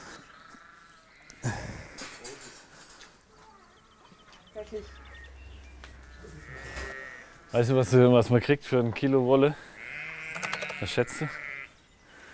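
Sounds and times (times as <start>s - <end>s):
farmyard noise: 0.0s - 12.3s
speech: 4.6s - 5.1s, 7.5s - 9.7s, 10.8s - 11.4s
low hum: 4.6s - 7.5s
sheep bleating in wavering nasal cries: 6.0s - 7.6s, 9.7s - 11.8s.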